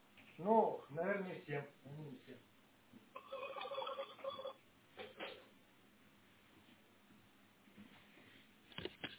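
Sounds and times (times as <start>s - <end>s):
speech: 0.4s - 3.4s
telephone ringing: 3.2s - 4.6s.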